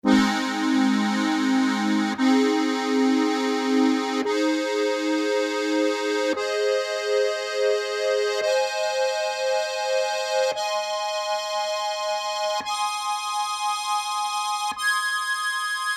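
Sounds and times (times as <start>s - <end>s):
B E-flat A-flat D-flat chord on accordion: 0.0s - 15.8s.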